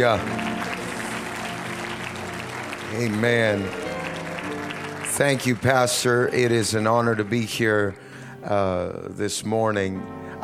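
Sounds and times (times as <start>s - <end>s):
speech: 0.0s - 0.4s, 2.9s - 3.9s, 5.2s - 10.4s
congregation clapping hands during a church service: 0.0s - 8.3s.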